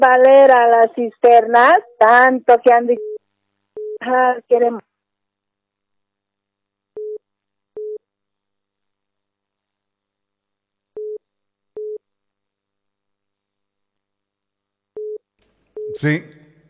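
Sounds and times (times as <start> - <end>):
speech: 0.0 - 3.1, 4.0 - 4.9, 15.9 - 16.4
phone busy tone after a dropped call: 3.0 - 3.2, 3.8 - 4.0, 15.0 - 15.2, 15.8 - 16.0.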